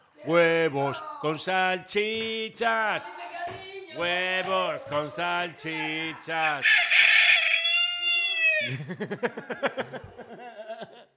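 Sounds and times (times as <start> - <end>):
speech: 0.2 - 7.1, 8.6 - 11.0
rooster crowing: 6.4 - 8.8
laughter: 8.2 - 11.1.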